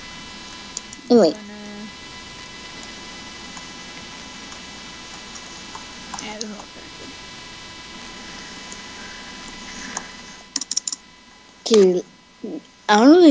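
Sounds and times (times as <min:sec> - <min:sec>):
faint hum: 0:00.0 - 0:13.2
speech: 0:01.1 - 0:01.5, 0:11.7 - 0:12.1, 0:12.9 - 0:13.2
typing on an iPad on-screen keyboard: 0:09.8 - 0:11.0.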